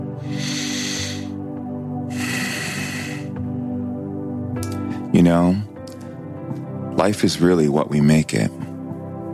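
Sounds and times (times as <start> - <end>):
deep breath in and out: 0.1 - 4.0
speech: 5.1 - 5.7, 7.0 - 8.7.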